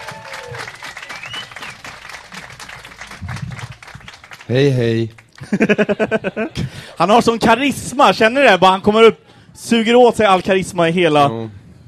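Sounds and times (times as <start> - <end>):
cheering: 0.0 - 3.9
crowd applauding: 0.0 - 6.2
whistles: 0.2 - 2.0
speech: 4.5 - 11.8
laughter: 5.3 - 7.0.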